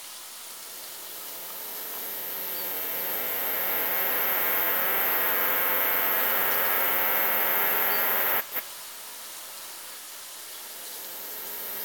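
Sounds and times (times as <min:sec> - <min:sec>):
brevipennis cicada buzzing song: 0:00.6 - 0:08.6, 0:10.6 - 0:11.8.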